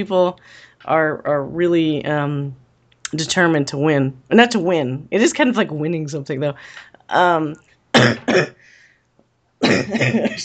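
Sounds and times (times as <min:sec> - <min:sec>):
speech: 0:00.0 - 0:08.8, 0:09.6 - 0:10.4
harsh rasping coughs: 0:08.0 - 0:08.6, 0:09.6 - 0:10.4
short voiced grunt: 0:09.6 - 0:10.4.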